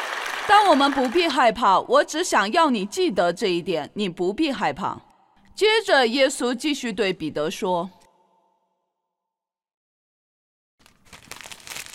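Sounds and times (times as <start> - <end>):
speech: 0.5 - 8.0
paper page blown over by the wind rustling: 10.8 - 11.9.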